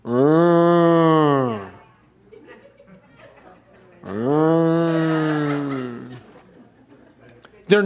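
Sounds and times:
person imitating cow mooing: 0:00.0 - 0:01.8, 0:04.0 - 0:06.1
faint murmuring or chuckling: 0:01.0 - 0:07.5.

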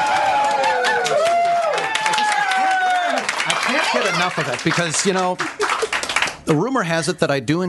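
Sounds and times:
live studio audience cheering loudly: 0:00.0 - 0:06.0
scattered clapping: 0:00.0 - 0:06.5
speech: 0:04.2 - 0:05.9, 0:06.5 - 0:07.6.

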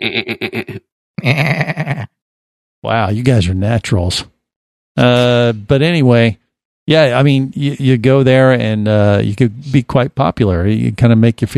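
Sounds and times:
speech: 0:00.0 - 0:01.7, 0:02.8 - 0:04.3, 0:05.0 - 0:11.5
human voices mimicking goat bleats: 0:00.0 - 0:02.2.

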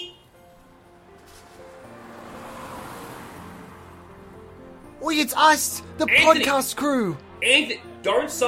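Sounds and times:
vehicle engine rumbling as it approaches: 0:00.2 - 0:08.4
speech: 0:05.0 - 0:08.4.

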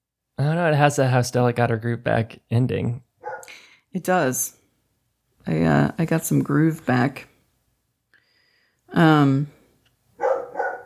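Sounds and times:
speech: 0:00.5 - 0:04.6, 0:05.4 - 0:07.3, 0:08.9 - 0:09.6
dog barking: 0:03.2 - 0:03.6, 0:10.2 - 0:10.8.

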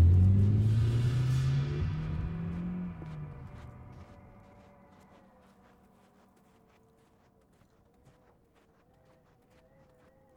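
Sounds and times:
limousine engine revving and pulling away: 0:00.0 - 0:06.1.

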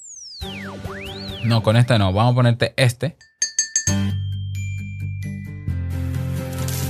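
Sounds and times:
speech: 0:00.6 - 0:03.3
podcast sonic logo chime jingle as mobile phone ringtone: 0:03.3 - 0:05.9.

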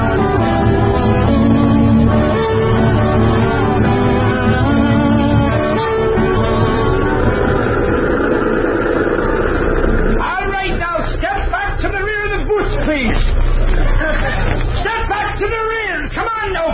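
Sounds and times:
steady low bus engine rumble: 0:00.0 - 0:16.2
many overlapping voices chattering and calling out in crowded bus interior: 0:03.2 - 0:16.7.

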